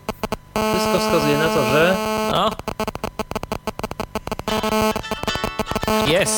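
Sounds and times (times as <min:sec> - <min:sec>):
speech: 0:00.6 - 0:03.1, 0:06.1 - 0:06.3
mobile phone ringing with a bright melodic electronic ringtone: 0:04.5 - 0:06.3.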